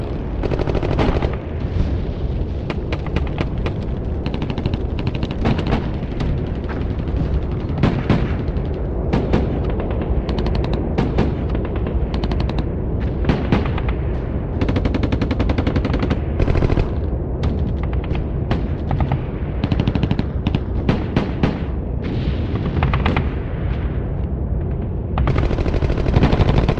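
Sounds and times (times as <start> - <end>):
war sounds: 0.0 - 26.7.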